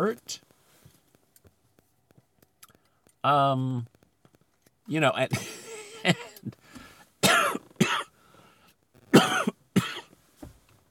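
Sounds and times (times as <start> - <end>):
speech: 0.1 - 0.5, 3.2 - 3.9, 4.9 - 6.6
person coughing harshly: 5.3 - 6.6, 7.2 - 8.1, 9.1 - 10.2.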